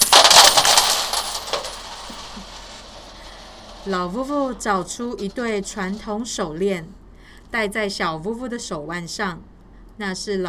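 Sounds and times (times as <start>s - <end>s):
coins jingling and rattling in a shaken betel-nut bag: 0.0s - 5.3s
speech: 3.8s - 10.4s.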